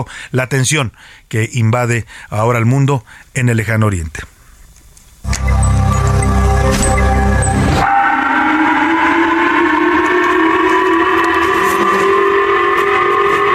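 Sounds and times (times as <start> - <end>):
speech: 0.0 - 4.3
missile warning air raid sirens wailing: 5.3 - 13.5.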